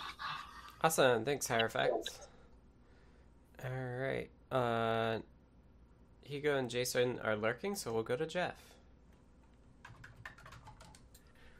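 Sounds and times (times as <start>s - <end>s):
speech: 0.8s - 2.3s, 3.6s - 5.3s, 6.3s - 8.8s
typing on a computer keyboard: 9.8s - 11.3s.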